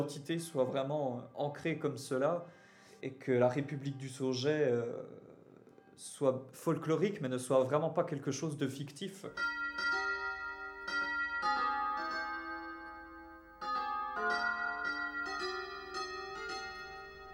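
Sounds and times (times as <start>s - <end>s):
speech: 0.0s - 5.3s, 6.0s - 9.6s
wall clock chiming a slow bell-like melody: 9.4s - 17.3s.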